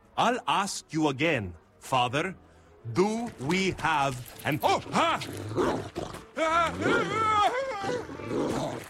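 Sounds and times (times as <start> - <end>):
speech: 0.2 - 8.8
dog growling with a deep snarl: 4.9 - 7.2, 7.8 - 8.8.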